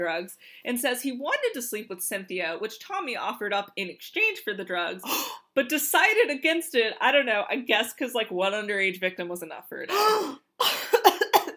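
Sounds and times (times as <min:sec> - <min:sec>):
speech: 0:00.0 - 0:10.4
sharp intake of breath: 0:05.0 - 0:05.5
harsh coughing fit: 0:09.9 - 0:11.5.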